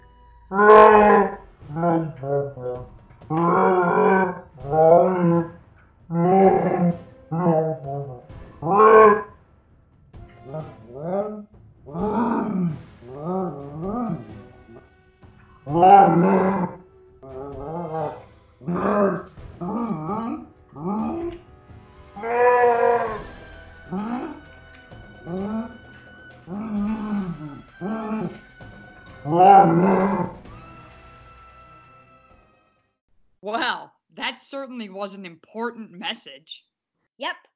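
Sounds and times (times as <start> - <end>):
speech: 0.5 - 1.3
Wookiee-like growls and moaning roars: 0.5 - 9.3, 10.5 - 14.8, 15.7 - 21.4, 22.2 - 24.4, 25.2 - 25.8, 26.5 - 28.5, 29.2 - 30.4.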